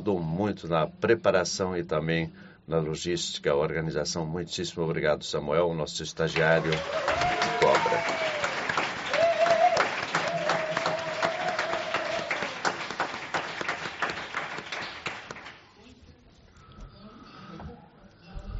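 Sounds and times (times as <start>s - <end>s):
speech: 0.0s - 8.4s
audience applauding: 6.3s - 15.7s
person whooping: 6.6s - 13.1s.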